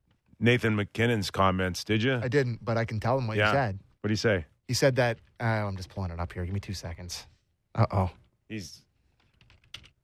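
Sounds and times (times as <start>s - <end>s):
speech: 0.4s - 8.8s
typing on a computer keyboard: 9.2s - 10.0s.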